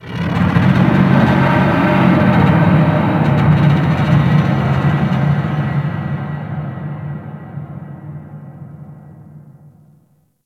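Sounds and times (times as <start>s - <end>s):
metal creaking underwater in the ocean: 0.0s - 6.4s.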